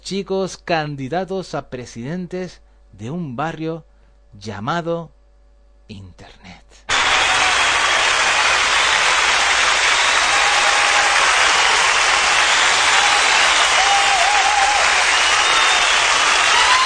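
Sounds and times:
speech: 0:00.1 - 0:05.2, 0:05.9 - 0:06.6
canned applause: 0:06.9 - 0:16.8.

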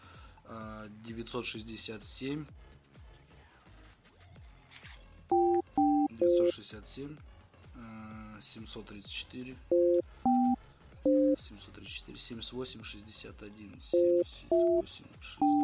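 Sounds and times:
speech: 0:00.5 - 0:02.8, 0:06.2 - 0:09.8, 0:11.0 - 0:15.6
telephone keypad tones while dialing a number: 0:05.3 - 0:06.5, 0:09.7 - 0:11.4, 0:14.0 - 0:14.8, 0:15.4 - 0:15.6.

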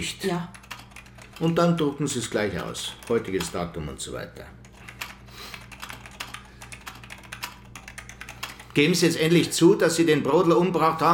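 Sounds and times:
speech: 0:00.0 - 0:00.6, 0:01.4 - 0:04.6, 0:08.8 - 0:11.1
typing on a keyboard during a police interrogation: 0:00.5 - 0:03.6, 0:04.6 - 0:09.0.

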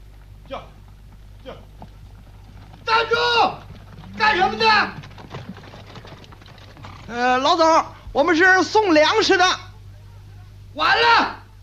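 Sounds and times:
hooves of a horse pulling a grain-delivery cart clip-clopping at a town gate at night: 0:00.0 - 0:08.0
low hum: 0:00.0 - 0:10.8
speech: 0:00.5 - 0:00.8, 0:07.2 - 0:09.6, 0:10.8 - 0:11.4.

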